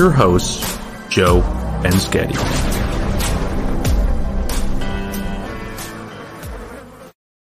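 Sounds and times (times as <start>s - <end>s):
speech: 0.0s - 2.7s
insect buzzing intro sound effect: 3.0s - 7.2s.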